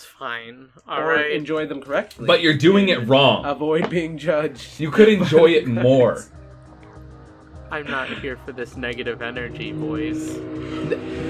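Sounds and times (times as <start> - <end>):
speech: 0.2 - 6.4, 7.7 - 11.2
motorcycle engine drone passing outside: 7.2 - 11.2
laughter: 10.7 - 11.2.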